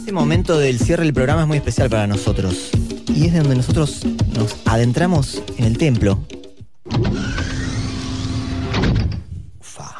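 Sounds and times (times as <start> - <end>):
speech: 0.2 - 6.3
modern motorized door sliding open with electric whir: 6.9 - 9.2.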